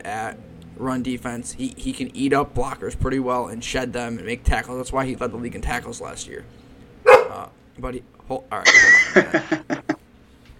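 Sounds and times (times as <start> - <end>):
speech: 0.0 - 6.6, 7.3 - 9.7
dog yipping: 7.1 - 7.4
dog barking: 7.1 - 7.5
laughter: 8.6 - 10.0.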